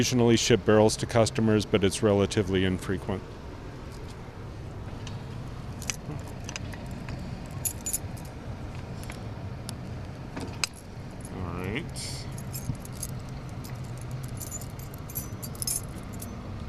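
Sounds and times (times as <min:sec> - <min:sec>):
speech: 0:00.0 - 0:03.4
keys jangling while searching for the right key at a whiskey distillery: 0:07.4 - 0:08.3, 0:12.3 - 0:16.4.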